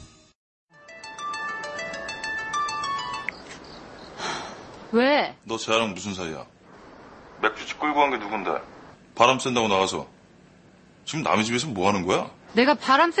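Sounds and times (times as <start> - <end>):
telephone ringtone with bright electronic jingle of chiming tones: 0.8 - 3.3
speech: 4.9 - 6.6, 7.4 - 10.1, 11.1 - 13.1.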